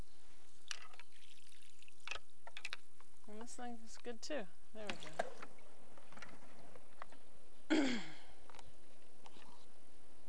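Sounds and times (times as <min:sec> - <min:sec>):
water scooped with a utensil and poured to rinse items: 0:00.5 - 0:02.2, 0:04.8 - 0:06.8
water dribbling: 0:00.5 - 0:02.8, 0:04.8 - 0:07.1
speech: 0:03.4 - 0:05.5.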